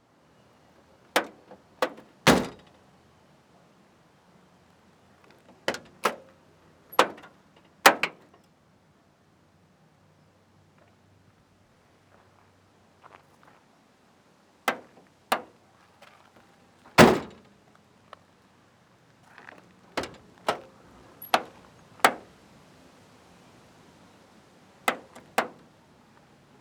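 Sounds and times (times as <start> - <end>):
Combi van doors opening and closing: 1.1 - 2.7, 5.4 - 6.3, 6.9 - 7.3, 7.9 - 8.3, 14.7 - 15.5, 17.0 - 17.4, 19.9 - 22.3, 24.9 - 25.6.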